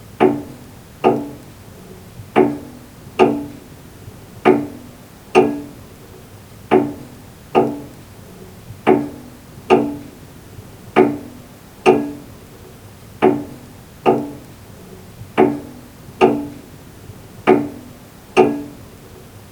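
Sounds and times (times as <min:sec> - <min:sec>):
grandfather clock ticking: 0:00.2 - 0:01.5, 0:02.4 - 0:03.6, 0:04.4 - 0:04.8, 0:05.4 - 0:05.8, 0:06.7 - 0:08.0, 0:08.9 - 0:10.1, 0:11.0 - 0:12.4, 0:13.2 - 0:14.6, 0:15.4 - 0:16.7, 0:17.4 - 0:18.8.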